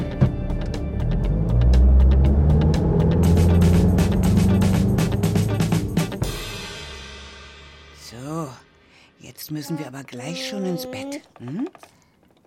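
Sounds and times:
car engine accelerating: 0.3 - 6.3
speech: 9.5 - 12.0.

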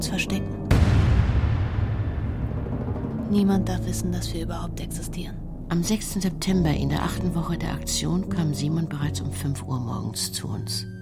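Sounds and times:
speech: 0.0 - 0.6, 3.3 - 11.0
bombs exploding over a ghetto: 0.7 - 3.6.

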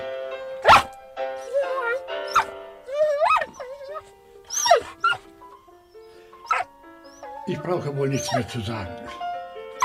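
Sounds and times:
sustained piano chords: 0.0 - 9.8
dog howling and yelping: 0.6 - 5.3, 5.9 - 7.4, 8.1 - 8.5
speech: 7.5 - 9.2.

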